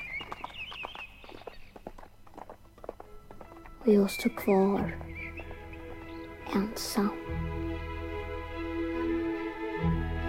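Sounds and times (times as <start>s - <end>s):
horse hooves clopping as rider rides away on a foggy morning: 0.0s - 7.6s
birds chirping: 0.0s - 9.5s
speech: 3.8s - 5.1s, 6.5s - 7.6s.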